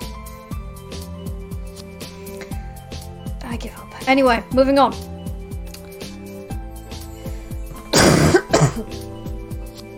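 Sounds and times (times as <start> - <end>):
rhythmic music with a thumping beat: 0.0 - 9.9
speech: 3.5 - 5.1
person coughing harshly: 7.8 - 9.0
throat clearing: 7.9 - 9.0.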